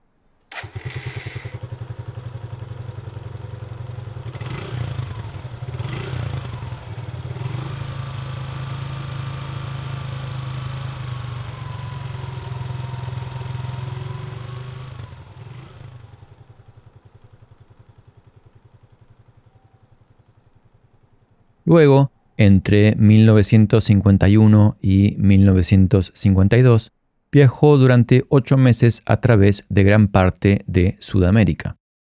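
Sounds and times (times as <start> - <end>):
small motor fitted to a bicycle idling and revving: 0.5 - 21.6
speech: 21.7 - 31.8.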